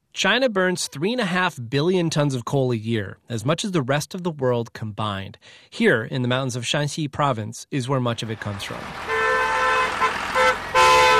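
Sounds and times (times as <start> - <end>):
speech: 0.2 - 9.1
steady road traffic rumble of coal trucks in Shanxi: 8.1 - 11.1
coal truck horn blasts in Shanxi coal country: 8.9 - 11.1.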